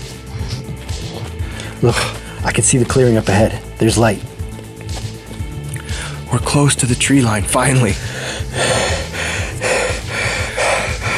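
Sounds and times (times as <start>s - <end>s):
person panting heavily out of breath after running: 0.0s - 2.4s, 5.7s - 6.3s, 8.0s - 11.1s
speech: 1.8s - 4.3s, 6.3s - 8.2s.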